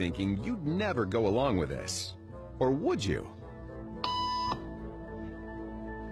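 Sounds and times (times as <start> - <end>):
speech: 0.0 - 3.4
electronic beep tone: 4.0 - 4.7.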